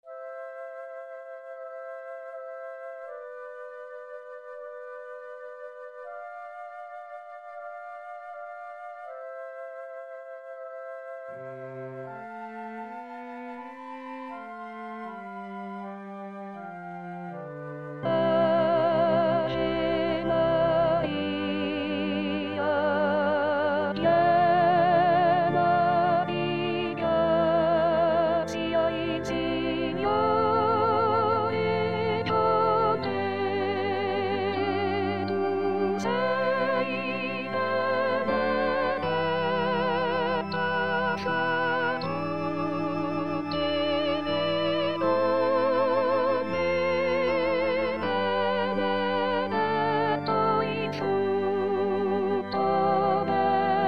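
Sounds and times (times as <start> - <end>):
soprano voice singing: 18.0 - 53.8.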